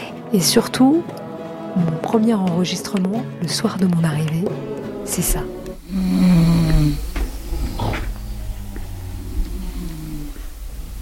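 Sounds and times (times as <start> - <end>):
speech: 0.3 - 1.2, 1.8 - 6.3
female neighbours snoring: 5.5 - 11.0
faint creaks: 5.8 - 11.0
rustles: 5.8 - 11.0.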